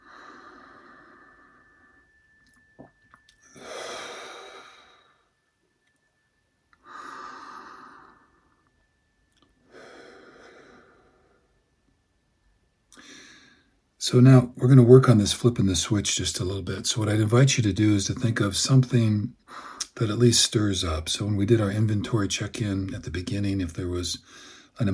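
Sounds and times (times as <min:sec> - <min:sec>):
long slow exhale: 0:00.0 - 0:02.2, 0:03.4 - 0:05.4, 0:06.8 - 0:08.8, 0:09.6 - 0:11.6, 0:13.0 - 0:13.8, 0:24.3 - 0:24.8
soft breathing at a steady unhurried pace: 0:00.0 - 0:02.4, 0:03.4 - 0:05.5, 0:06.8 - 0:08.9, 0:09.6 - 0:11.7, 0:12.9 - 0:13.8, 0:19.4 - 0:20.0, 0:24.2 - 0:24.8
speech: 0:14.1 - 0:24.9.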